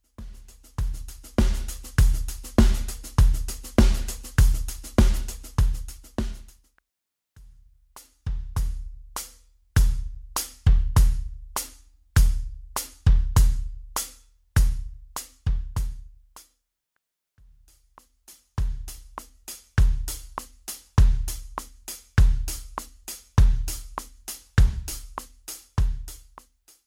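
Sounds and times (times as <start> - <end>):
hi-hat playing note values: 0.0 - 6.7, 8.0 - 16.6, 17.6 - 26.8.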